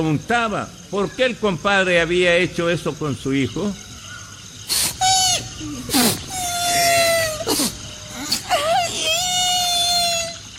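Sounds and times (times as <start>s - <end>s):
speech: 0.0s - 3.8s
voice imitating a young boy crying with wails and sobbing breaths: 4.7s - 10.5s.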